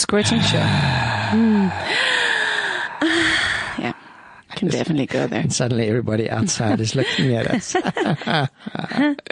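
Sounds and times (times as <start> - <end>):
speech: 0.1 - 2.2, 4.6 - 9.3
heavy breathing: 0.2 - 4.5
person gasping: 0.2 - 4.5
long drawn-out exhale: 0.4 - 4.4.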